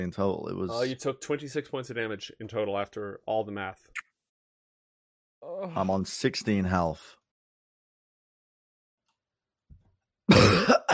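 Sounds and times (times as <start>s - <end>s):
speech: 0.0s - 4.0s, 5.4s - 7.2s
voice performing a rough wet cough as if coughing up blood: 10.3s - 10.9s.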